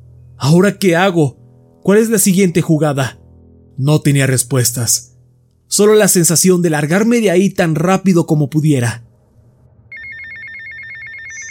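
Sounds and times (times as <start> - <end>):
speech: 0.4 - 3.2, 3.8 - 5.1, 5.7 - 9.1
mobile phone ringing inside a bag: 9.9 - 11.4.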